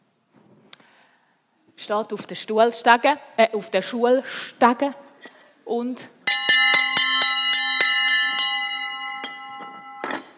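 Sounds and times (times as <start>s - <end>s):
speech: 1.8s - 6.2s
school bell ringing: 6.3s - 10.3s.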